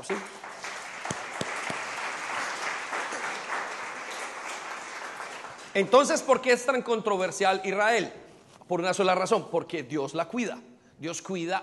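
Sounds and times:
speech: 0.0s - 0.4s, 5.8s - 11.6s
sharp individual claps: 0.0s - 6.0s
crowd applauding: 0.0s - 6.3s.

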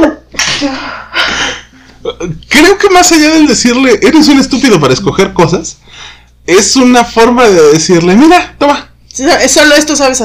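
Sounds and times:
person sneezing: 0.3s - 1.7s
speech: 0.6s - 1.6s, 2.2s - 10.2s.

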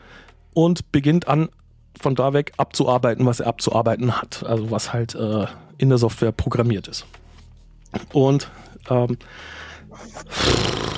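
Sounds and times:
speech: 0.6s - 7.2s, 7.9s - 10.8s
loud harsh gasping inhale of a speaker: 9.3s - 10.9s.

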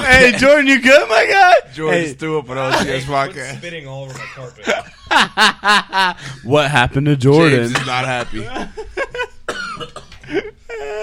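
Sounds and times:
speech: 0.1s - 9.1s, 10.3s - 11.0s
man coughing and choking after something went down the wrong way: 4.1s - 5.0s, 7.4s - 11.0s
laughter: 4.1s - 6.4s, 7.4s - 9.5s.

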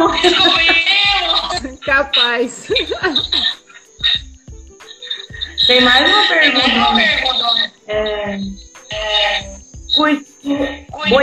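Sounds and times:
laughter: 0.0s - 3.6s
dull low thumps: 0.0s - 6.0s, 8.0s - 10.0s
cicadas buzzing: 0.0s - 11.2s
speech: 1.9s - 3.6s, 5.7s - 8.6s, 10.0s - 11.2s.

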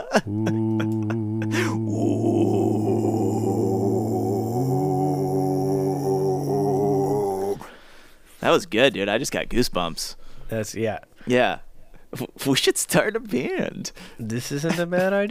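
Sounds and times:
several voices imitating a chorus of low wolf growls: 0.0s - 7.7s
speech: 0.2s - 1.1s, 8.4s - 15.2s.

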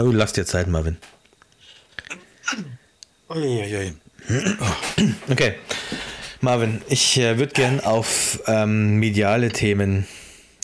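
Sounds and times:
speech: 0.0s - 1.2s, 3.3s - 10.6s
person sneezing: 2.0s - 2.8s.

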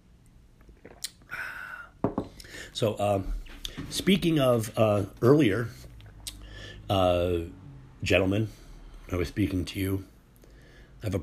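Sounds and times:
faint wet mouth sound: 0.6s - 1.3s
person sipping a drink and swallowing: 0.6s - 1.3s
speech: 2.6s - 5.8s, 6.9s - 10.1s.

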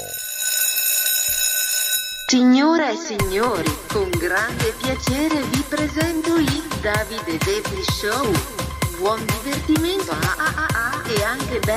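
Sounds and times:
loud electronic alarm clock ringing: 0.0s - 2.6s
speech: 2.3s - 11.7s.

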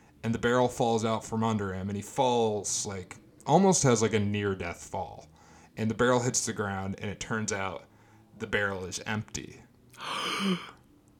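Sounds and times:
speech: 0.2s - 10.7s
person gasping: 10.0s - 10.8s.

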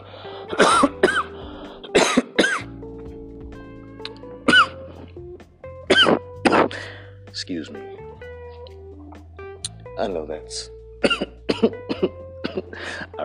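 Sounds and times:
person sitting outside coughing: 0.5s - 2.7s, 4.5s - 4.9s, 5.9s - 7.0s, 11.0s - 13.0s
speech: 7.5s - 8.0s, 10.0s - 10.8s, 11.6s - 12.2s.

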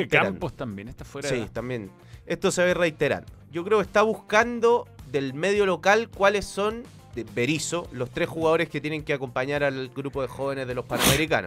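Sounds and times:
speech: 0.0s - 11.4s
sneeze: 10.9s - 11.3s.

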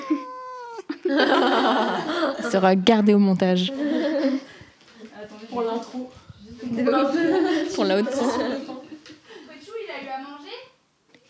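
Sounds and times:
cat meowing: 0.0s - 1.0s
laughter: 0.9s - 2.6s, 6.9s - 8.9s
speech: 1.1s - 3.8s, 5.6s - 8.7s.

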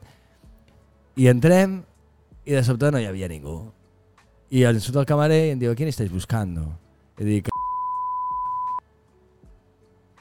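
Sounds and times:
speech: 1.2s - 3.8s, 4.5s - 7.5s
censor bleep: 7.5s - 8.8s.

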